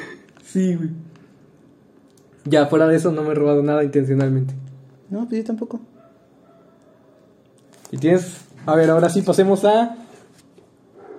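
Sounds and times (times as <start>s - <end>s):
speech: 0.5s - 1.2s, 2.4s - 5.9s, 7.9s - 10.0s
dogs barking: 5.9s - 7.3s, 10.9s - 11.1s.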